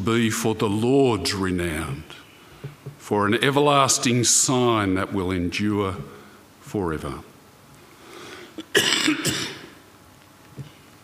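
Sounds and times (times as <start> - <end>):
speech: 0.0 - 2.2, 3.1 - 7.3
harsh raspy coughs: 8.6 - 9.8.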